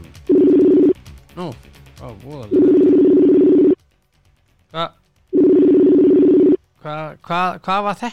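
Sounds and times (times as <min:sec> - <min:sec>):
speech: 0:01.4 - 0:03.5, 0:04.7 - 0:05.0, 0:06.8 - 0:08.1
low-pitched telephone tones while a call is being placed: 0:02.6 - 0:03.8, 0:05.4 - 0:06.6.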